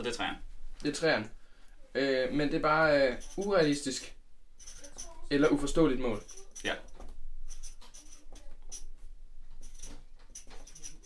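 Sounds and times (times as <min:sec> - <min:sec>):
speech: 0:00.0 - 0:04.2, 0:05.0 - 0:06.9
pen or pencil writing on paper: 0:03.1 - 0:03.8, 0:04.6 - 0:11.0.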